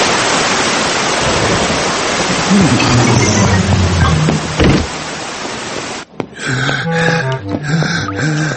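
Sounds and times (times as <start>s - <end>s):
heavy rain downpour: 0.0s - 8.5s
soft melodic tones: 6.8s - 8.5s.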